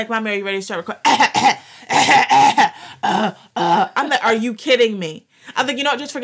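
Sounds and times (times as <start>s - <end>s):
speech: 0.0s - 6.2s
person coughing: 1.0s - 4.0s.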